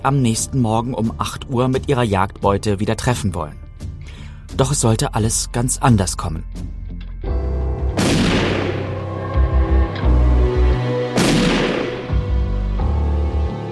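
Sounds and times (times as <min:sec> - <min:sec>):
speech: 0:00.0 - 0:03.6, 0:04.5 - 0:06.8
low steady rumbling drone: 0:07.3 - 0:13.7
gunshots fired at night during a hunt: 0:08.0 - 0:09.0, 0:11.2 - 0:12.2.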